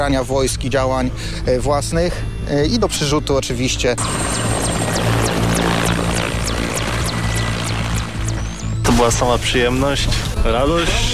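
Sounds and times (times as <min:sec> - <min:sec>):
speech: 0:00.0 - 0:04.4, 0:09.0 - 0:11.1
helicopter rotor thumping: 0:04.0 - 0:09.2.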